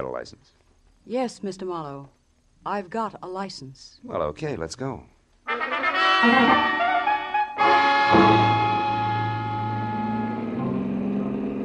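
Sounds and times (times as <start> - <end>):
speech: 0.0 - 6.8
car engine revving as the vehicle pulls away fast: 7.6 - 11.6.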